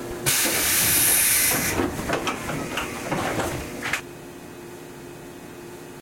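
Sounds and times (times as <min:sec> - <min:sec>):
automatic door: 0:00.3 - 0:04.0.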